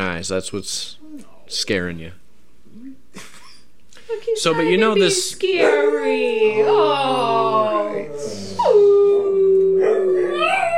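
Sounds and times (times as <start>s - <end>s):
speech: 0.2s - 3.3s, 4.1s - 9.0s
dog with two different-colored eyes howling: 5.4s - 10.7s
dog with two different-colored eyes yipping and whimpering: 9.8s - 10.7s.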